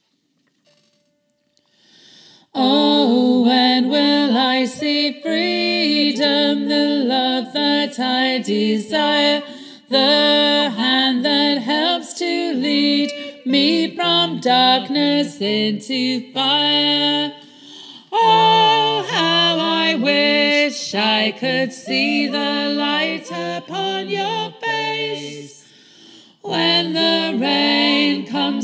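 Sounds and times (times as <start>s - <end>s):
gospel choir bass voices singing an octave above: 2.5s - 28.6s.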